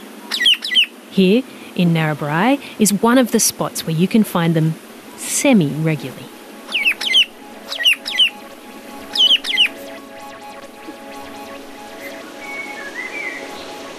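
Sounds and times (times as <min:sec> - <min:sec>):
family flock of birds calling to each other: 0:00.0 - 0:01.7, 0:04.7 - 0:13.9
speech: 0:01.2 - 0:06.4
faint chirps: 0:06.7 - 0:13.9.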